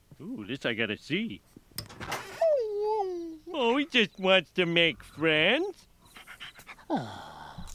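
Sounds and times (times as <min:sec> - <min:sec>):
speech: 0:00.2 - 0:01.5, 0:03.6 - 0:05.9, 0:06.9 - 0:07.3
dog panting: 0:06.1 - 0:06.9.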